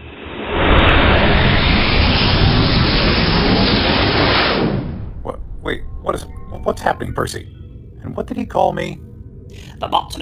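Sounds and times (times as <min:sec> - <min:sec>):
ship engines firing up: 0:00.6 - 0:09.7
speech: 0:06.1 - 0:10.2.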